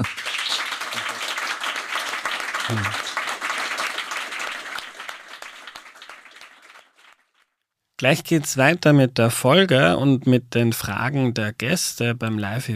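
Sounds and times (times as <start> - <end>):
live-event audience applauding a guest: 0.0 - 7.4
person cheering: 2.7 - 3.0
speech: 2.7 - 3.0, 8.0 - 12.7.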